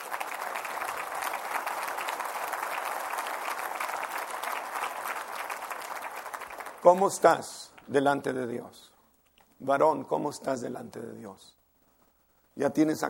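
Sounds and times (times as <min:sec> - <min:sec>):
audience applauding: 0:00.0 - 0:07.5
speech: 0:06.8 - 0:08.9, 0:09.6 - 0:11.6, 0:12.6 - 0:13.0.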